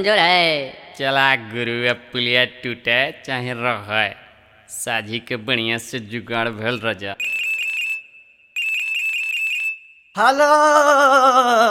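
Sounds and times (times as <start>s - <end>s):
speech: 0.0s - 7.4s, 10.2s - 11.6s
phone ringtone with high electronic warbling tone: 7.2s - 9.8s.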